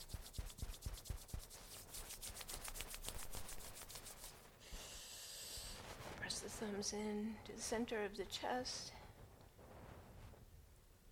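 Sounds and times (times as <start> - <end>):
hands rubbing together in front of the chest: 0.0 - 4.5
speech: 6.4 - 9.0.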